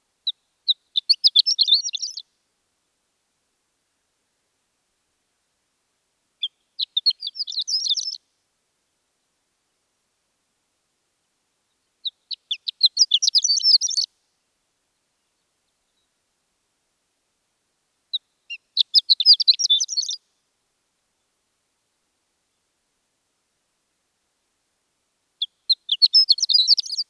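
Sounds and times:
horned lark calling: 0.7 - 2.2, 6.4 - 8.2, 12.0 - 14.1, 18.1 - 20.2, 25.4 - 27.0.

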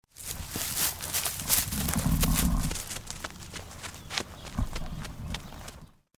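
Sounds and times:
cow: 0.5 - 3.0.

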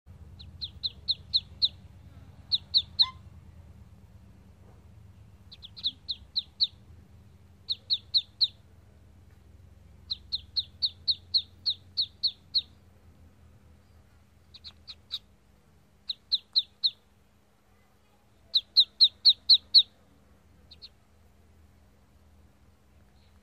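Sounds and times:
duckling peeping: 0.2 - 3.5, 5.3 - 6.9, 7.6 - 8.7, 9.9 - 13.0, 14.4 - 17.2, 18.4 - 21.0.

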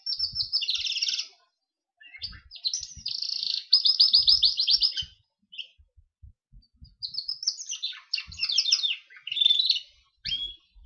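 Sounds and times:
Gloster canary singing: 0.0 - 5.8, 6.8 - 10.8.

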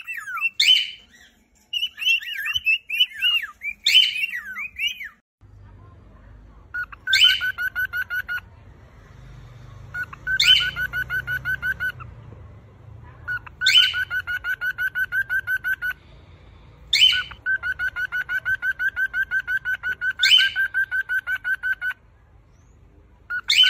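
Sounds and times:
female and male cockatiel chirps: 0.0 - 5.2, 6.7 - 8.5, 9.9 - 12.1, 13.2 - 16.0, 16.9 - 22.0, 23.3 - 23.6.

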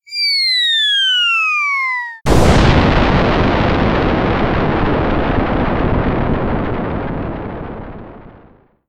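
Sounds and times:
bomb falling: 0.1 - 8.7
bomb exploding: 2.2 - 8.8.

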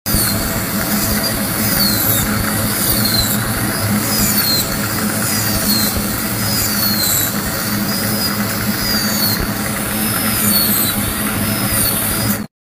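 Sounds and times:
dental drill: 0.1 - 12.5.

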